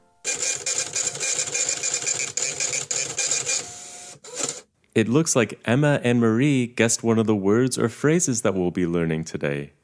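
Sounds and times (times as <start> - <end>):
printer whirring and ratcheting printing out a page: 0.3 - 4.6
speech: 5.0 - 9.8.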